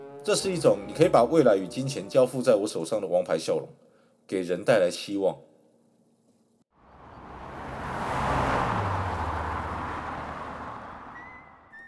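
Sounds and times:
speech: 0:00.2 - 0:05.5
sports car speeding past a golf course: 0:06.8 - 0:11.7
thin whistle: 0:11.2 - 0:11.8.

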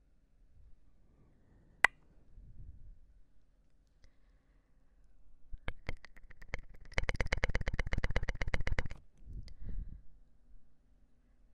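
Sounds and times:
close mouth sounds with wet clicking: 0:05.6 - 0:09.0.

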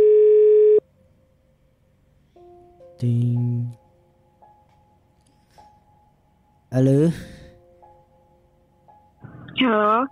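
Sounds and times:
telephone dial tone while placing a call: 0:00.0 - 0:00.8
speech: 0:03.0 - 0:03.8, 0:06.7 - 0:07.3, 0:09.7 - 0:10.1.

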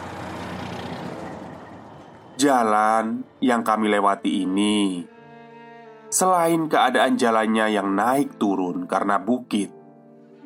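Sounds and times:
heavy trucks rolling past: 0:00.0 - 0:03.4
broadband road noise: 0:00.0 - 0:04.8
speech: 0:02.4 - 0:05.1, 0:06.1 - 0:09.8.

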